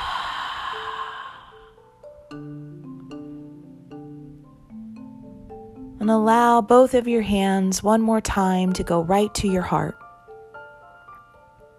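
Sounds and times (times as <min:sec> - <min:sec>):
big audible exhale through the mouth during a guided breathing exercise: 0:00.0 - 0:01.8
soft sustained musical tones: 0:00.0 - 0:11.7
speech: 0:02.3 - 0:02.5, 0:06.0 - 0:10.0.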